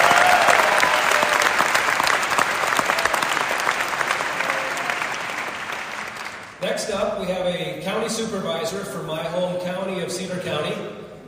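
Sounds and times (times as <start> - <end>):
crowd applauding: 0.0 - 6.6
speech: 6.8 - 11.0.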